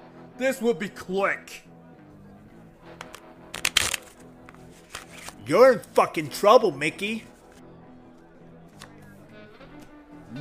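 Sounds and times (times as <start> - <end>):
speech: 0.4 - 1.7, 5.5 - 7.3
playing cards clicking as a dealer cuts the deck for blackjack: 3.0 - 5.4, 8.8 - 9.0.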